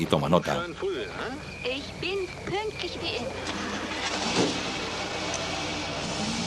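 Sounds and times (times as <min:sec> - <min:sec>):
speech: 0:00.0 - 0:03.8
car engine rumbling as the vehicle pulls off: 0:03.3 - 0:06.4.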